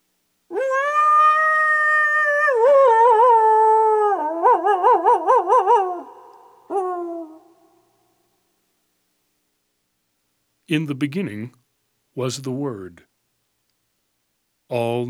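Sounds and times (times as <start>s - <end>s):
coyote howling and yipping: 0.5s - 7.7s
speech: 10.7s - 11.6s, 12.2s - 13.1s, 14.7s - 15.0s.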